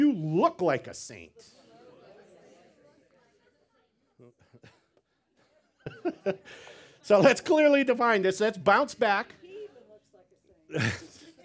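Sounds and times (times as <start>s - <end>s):
speech: 0.3s - 1.6s, 6.0s - 9.4s, 10.7s - 11.2s
laughter: 1.4s - 3.7s, 4.3s - 7.6s, 10.7s - 11.4s
person sneezing: 10.7s - 11.3s.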